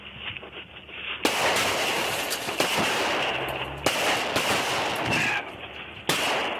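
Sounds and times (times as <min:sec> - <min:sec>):
gunshots fired from a vehicle at a sheriff's deputy: 0:01.2 - 0:06.5.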